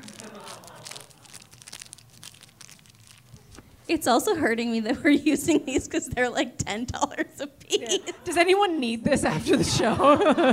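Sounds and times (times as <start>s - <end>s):
laughter: 0.0s - 1.5s, 7.2s - 8.5s, 9.2s - 10.5s
thin paper wrapper of a tampon crinkling and tearing: 0.0s - 3.8s
speech: 3.9s - 10.5s.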